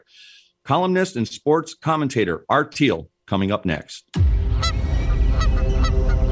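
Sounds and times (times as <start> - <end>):
speech: 0.0 - 4.3
flock of geese honking: 4.5 - 6.2.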